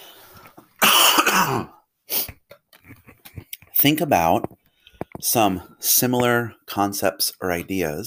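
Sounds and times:
person coughing: 0.8 - 2.3
speech: 1.4 - 1.8, 3.8 - 4.6, 5.2 - 8.0.

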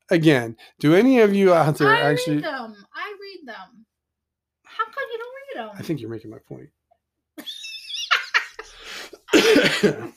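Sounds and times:
speech: 0.1 - 3.8, 4.8 - 6.8, 9.4 - 10.1
person coughing into a microphone: 9.3 - 10.1.

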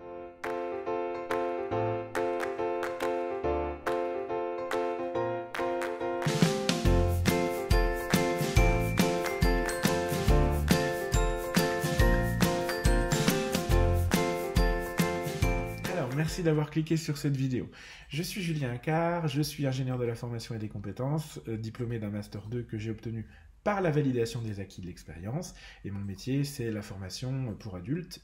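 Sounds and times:
bright instrumental podcast intro jingle with bell-like melody: 0.0 - 16.4
speech: 16.3 - 28.2.

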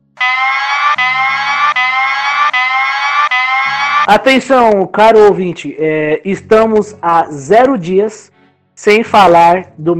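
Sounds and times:
electronic alarm blaring in repeating pulses: 0.0 - 4.2
speech: 4.1 - 9.9.

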